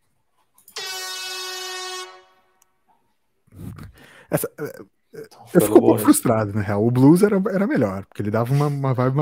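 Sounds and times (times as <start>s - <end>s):
air horn blast: 0.7s - 2.6s
speech: 3.8s - 9.2s.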